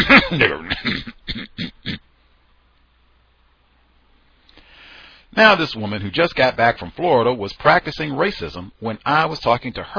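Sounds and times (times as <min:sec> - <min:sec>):
person clearing throat: 0:00.0 - 0:02.1
person coughing: 0:00.0 - 0:02.1
speech: 0:00.1 - 0:01.6, 0:05.4 - 0:09.9.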